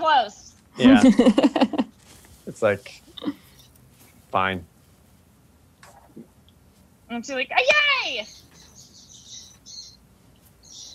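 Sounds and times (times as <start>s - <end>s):
speech: 0.0s - 1.8s, 2.5s - 3.4s, 4.3s - 4.7s, 7.1s - 8.5s
laughter: 0.8s - 1.9s
birds chirping: 7.2s - 10.9s.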